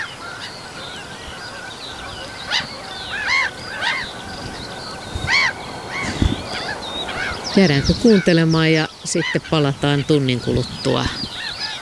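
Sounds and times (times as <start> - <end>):
black-headed gulls calling while flying over the microphones: 0.0 - 11.8
hiss: 0.0 - 11.8
speech: 7.6 - 11.2.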